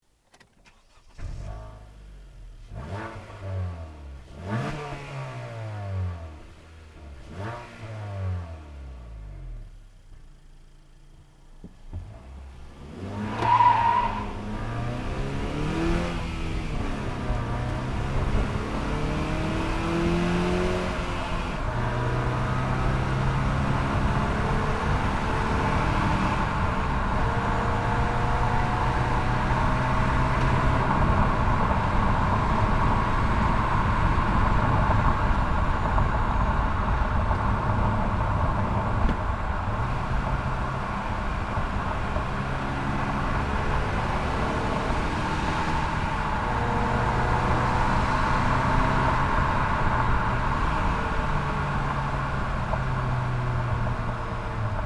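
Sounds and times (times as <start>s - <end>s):
Honda Accord Sport car: 0.0s - 54.8s.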